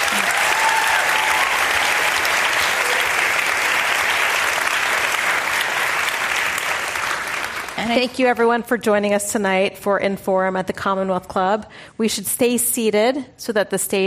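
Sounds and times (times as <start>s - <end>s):
large audience applause: 0.0s - 8.0s
speech: 7.9s - 14.0s.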